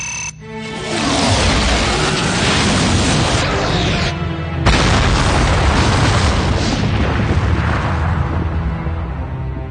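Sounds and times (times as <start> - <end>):
particle cannon blast destroying a planet: 0.9 - 9.5.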